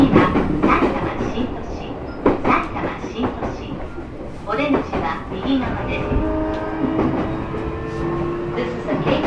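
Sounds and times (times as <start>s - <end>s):
Keihin-Tohoku Line local train rumbling, heard from inside the car: 0.0s - 9.2s.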